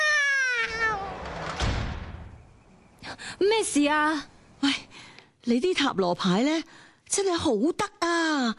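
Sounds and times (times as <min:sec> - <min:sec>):
cat meowing: 0:00.0 - 0:01.2
speech: 0:03.4 - 0:04.8, 0:05.5 - 0:08.5.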